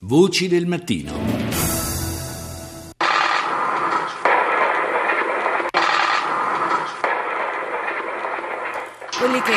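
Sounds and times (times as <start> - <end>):
speech: 0.1 - 1.7
gunshots: 3.0 - 9.5.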